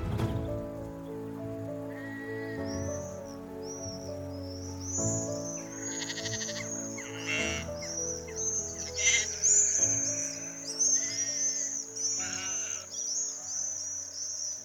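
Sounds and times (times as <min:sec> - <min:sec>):
high shrill screams of swifts streaking overhead: 0:00.8 - 0:14.6
sheep bleating while grazing parkland behind Laycock Abbey: 0:05.8 - 0:07.6.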